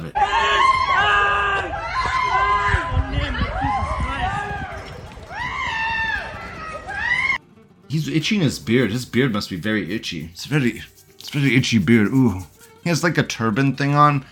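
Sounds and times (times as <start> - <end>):
panicked shouting: 0.0 - 7.4
several people screaming and wailing in a video: 0.0 - 7.4
crowd commotion: 0.6 - 7.4
speech: 8.0 - 14.3.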